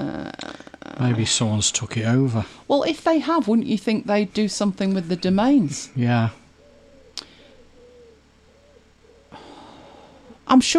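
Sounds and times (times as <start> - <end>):
speech: 1.0 - 6.4, 10.5 - 10.7
bird calling with a low wavering hooting tone: 6.4 - 10.4.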